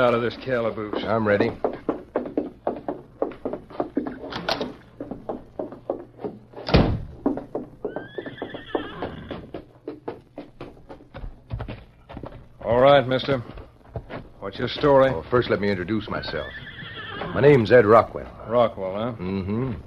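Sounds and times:
speech: 0:00.0 - 0:01.8, 0:13.0 - 0:13.6, 0:14.5 - 0:16.7, 0:17.3 - 0:19.8
hooves clip-clopping on a hard surface: 0:00.0 - 0:18.7
horse neighing: 0:07.8 - 0:09.6, 0:16.2 - 0:17.6.

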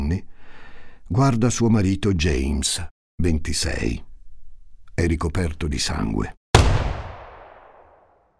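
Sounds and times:
speech: 0:00.1 - 0:00.3, 0:01.1 - 0:04.1, 0:05.0 - 0:06.4
loud gunshot in a bedroom with long echo: 0:06.6 - 0:08.2.

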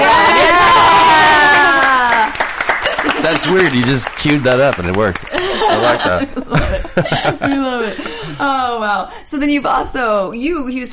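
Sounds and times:
applause: 0:00.0 - 0:06.1
crowd cheering and whooping: 0:00.0 - 0:06.9
laughter: 0:02.8 - 0:08.5
speech: 0:03.4 - 0:10.9.

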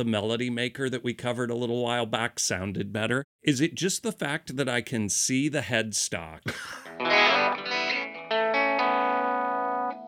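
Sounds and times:
speech: 0:00.0 - 0:07.2
laughter: 0:06.5 - 0:07.0
distorted electric guitar chords played through effects: 0:06.8 - 0:10.0.

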